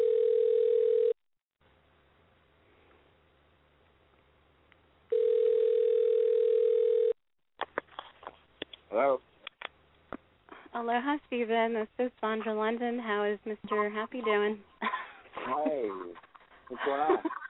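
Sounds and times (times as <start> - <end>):
telephone dial tone: 0.0 - 1.2, 5.1 - 7.2
speech: 10.9 - 14.7, 15.5 - 17.4
laughter: 13.7 - 17.4.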